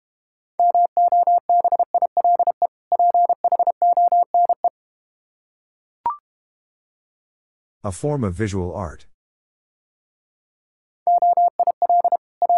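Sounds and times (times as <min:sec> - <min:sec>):
mobile phone dial tone beeping: 0:00.6 - 0:04.7, 0:11.1 - 0:12.5
speech: 0:07.8 - 0:09.1.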